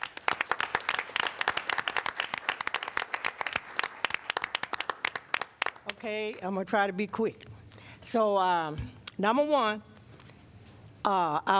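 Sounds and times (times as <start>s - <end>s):
audience applause: 0.0s - 5.9s
speech: 6.0s - 9.9s, 11.0s - 11.5s.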